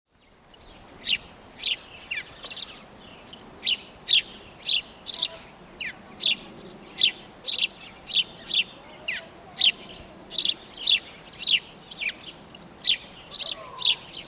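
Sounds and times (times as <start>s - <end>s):
house sparrow Passer domesticus calls: 0.5s - 14.2s.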